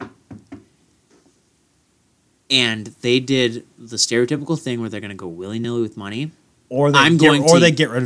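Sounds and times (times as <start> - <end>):
quick hollow knocks on wood: 0.0 - 0.7
speech: 2.5 - 8.0.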